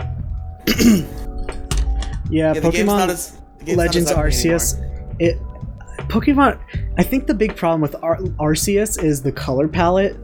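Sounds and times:
rough raspy throat clearing: 0:00.6 - 0:01.3
speech: 0:00.7 - 0:01.2, 0:02.3 - 0:05.4, 0:06.1 - 0:10.2.

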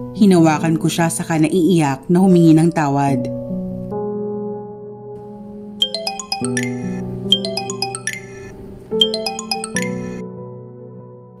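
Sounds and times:
speech: 0:00.0 - 0:03.4
phone alarm ringing with bright repeating melodic chime: 0:05.8 - 0:10.2.

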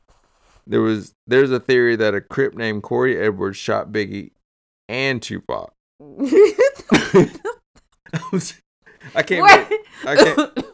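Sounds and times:
speech: 0:00.7 - 0:07.5, 0:08.1 - 0:10.7
person laughing in loud bursts: 0:06.3 - 0:07.6, 0:09.4 - 0:10.7
person coughing harshly while laughing: 0:09.5 - 0:10.7.

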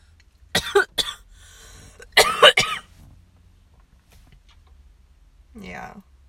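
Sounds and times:
harsh coughing fit after smoking from a bong: 0:00.6 - 0:01.2, 0:02.0 - 0:02.9.

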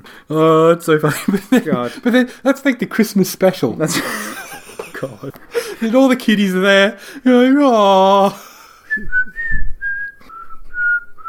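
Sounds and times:
speech: 0:00.3 - 0:09.4
laughter: 0:01.1 - 0:02.3, 0:03.8 - 0:06.2
person whistling a short tune into a microphone: 0:08.9 - 0:11.2.

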